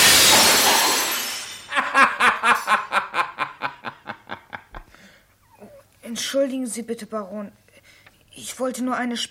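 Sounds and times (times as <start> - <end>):
glass breaking: 0.0 - 1.8
chandelier crashing to the floor: 0.0 - 2.7
rhythmic snickering laugh bursts: 1.7 - 4.9
speech: 6.2 - 7.6, 8.5 - 9.2.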